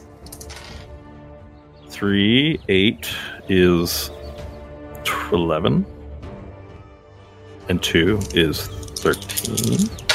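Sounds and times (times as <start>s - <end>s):
four dice rattling across a hard tabletop: 0.2s - 0.8s, 8.2s - 10.1s
speech: 2.0s - 4.2s, 5.3s - 6.0s, 7.7s - 10.0s.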